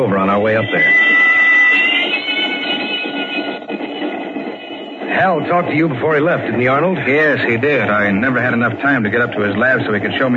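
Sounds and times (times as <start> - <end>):
speech: 0.0 - 1.8, 5.1 - 10.3
moving train rumbling and clattering: 0.0 - 10.3
bright sustained whistle-like tone: 0.5 - 5.2.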